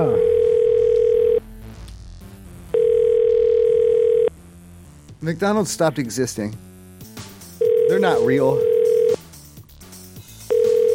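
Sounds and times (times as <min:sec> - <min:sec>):
long steady electronic fax machine tones: 0:00.0 - 0:01.4, 0:02.8 - 0:04.3, 0:07.6 - 0:09.2, 0:10.5 - 0:10.9
speech: 0:05.2 - 0:06.7, 0:08.0 - 0:08.7.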